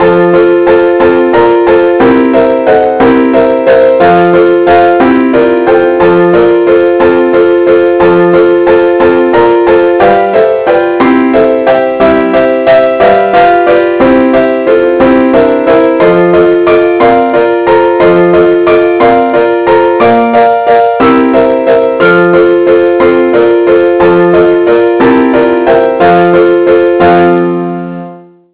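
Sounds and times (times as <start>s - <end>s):
chords: 0.0s - 28.5s.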